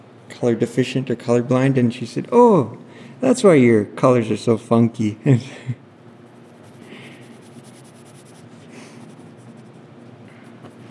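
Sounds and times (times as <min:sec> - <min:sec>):
speech: 0:00.4 - 0:05.8
Copic markers scratching on paper during drawing and shading: 0:06.4 - 0:10.8.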